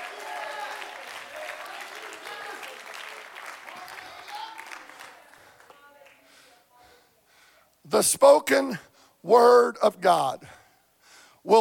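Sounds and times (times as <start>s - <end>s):
people shouting and cheering in a big room: 0.0s - 5.6s
large crowd clapping in a big room: 0.0s - 6.4s
speech: 7.9s - 10.6s.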